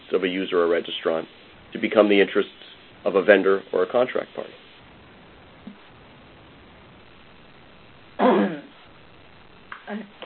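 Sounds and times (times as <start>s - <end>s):
quiet hiss: 0.0s - 10.2s
speech: 0.1s - 4.7s
rough cough: 8.2s - 8.7s.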